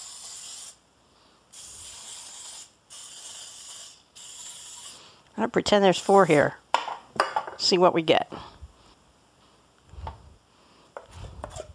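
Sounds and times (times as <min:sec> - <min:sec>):
cooking spray hissing onto a muffin tin: 0:00.0 - 0:06.7
speech: 0:05.4 - 0:06.6, 0:07.6 - 0:08.6.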